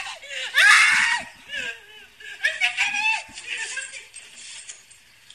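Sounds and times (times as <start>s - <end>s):
person screaming while falling off a ledge: 0.0s - 1.8s
laughter: 1.4s - 3.9s.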